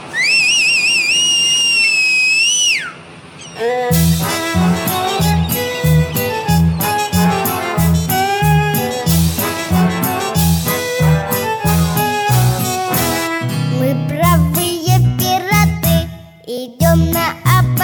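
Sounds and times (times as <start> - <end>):
warbling bosun-style whistle call: 0.0 - 13.5
upbeat band music with a steady thumping beat: 3.9 - 16.1, 16.8 - 17.8.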